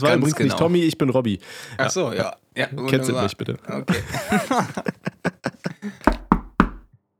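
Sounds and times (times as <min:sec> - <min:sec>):
laughter: 0:00.0 - 0:00.8, 0:01.5 - 0:06.2
speech: 0:00.0 - 0:06.1
knocking on a door: 0:06.0 - 0:06.9.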